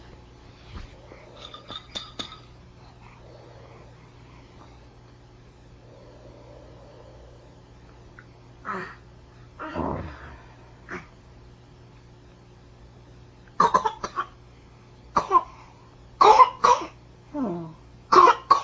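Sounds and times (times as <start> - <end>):
low steady hum: 0.0 - 13.5
baby coughing: 13.6 - 14.4, 15.2 - 15.6, 16.2 - 17.0, 18.1 - 18.6.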